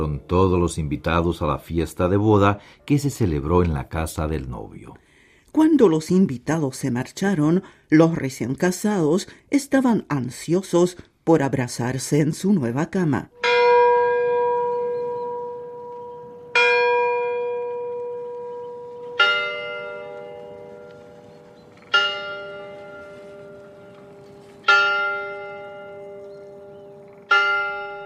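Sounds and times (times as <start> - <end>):
speech: 0.0 - 13.5
church tower bell tolling: 13.3 - 28.0.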